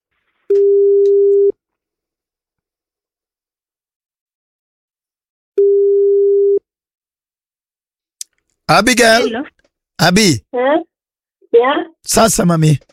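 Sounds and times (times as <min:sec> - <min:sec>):
telephone ringback tone while a call is being placed: 0:00.6 - 0:01.5, 0:05.6 - 0:06.6
speech: 0:08.7 - 0:10.9, 0:11.5 - 0:12.9.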